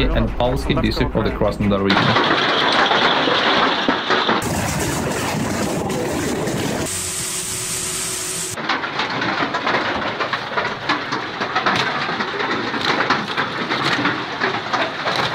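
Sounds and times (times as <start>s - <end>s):
speech: 0.0s - 2.7s
powerful hail pounding on house roofs in the Krasnodar region of Russia: 1.9s - 7.2s, 8.5s - 15.3s.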